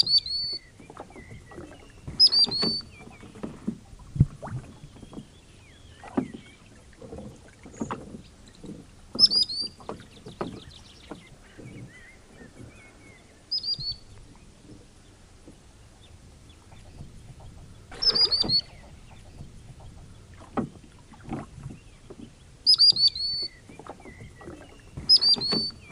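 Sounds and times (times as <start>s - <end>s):
common sandpiper giving shrill high piping trills on a lake: 0.0s - 3.2s, 9.1s - 14.6s, 16.5s - 20.3s, 22.6s - 25.9s
knocking and splashing of rowing on a lake: 0.0s - 25.9s.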